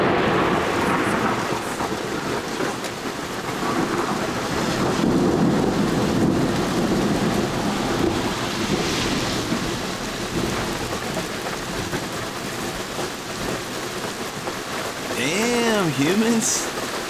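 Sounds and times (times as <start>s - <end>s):
deep rumbles of thunder: 0.0s - 11.2s
heavy rain during a January thunderstorm in New York City: 0.0s - 17.0s
speech: 16.2s - 16.7s.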